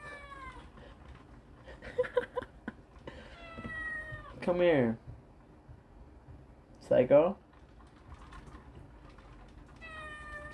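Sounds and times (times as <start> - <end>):
cat meowing: 0.0 - 0.7, 3.3 - 4.4, 9.8 - 10.5
speech: 4.5 - 5.0, 6.9 - 7.4.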